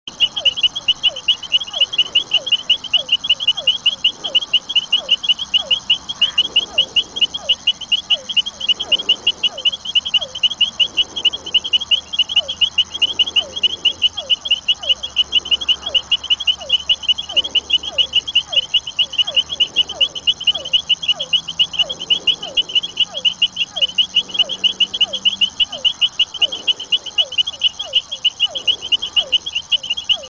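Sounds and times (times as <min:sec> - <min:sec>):
Leptodactylus furnarius calling: 0:00.0 - 0:30.2.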